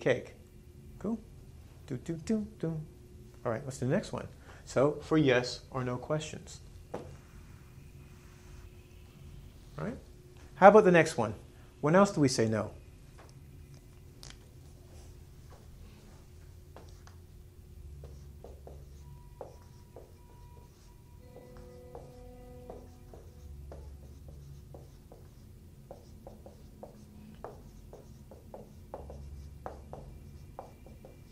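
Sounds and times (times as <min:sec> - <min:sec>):
speech: 0:00.0 - 0:00.4, 0:01.0 - 0:01.3, 0:01.9 - 0:07.0, 0:09.8 - 0:10.0, 0:10.6 - 0:12.8
writing by hand: 0:18.0 - 0:31.3.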